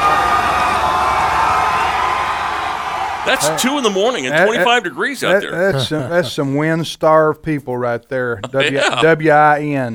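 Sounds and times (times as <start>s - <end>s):
large crowd of fans cheering and whooping at airport: 0.0s - 4.6s
laughter: 3.3s - 6.6s, 8.4s - 9.2s
speech: 3.3s - 9.9s.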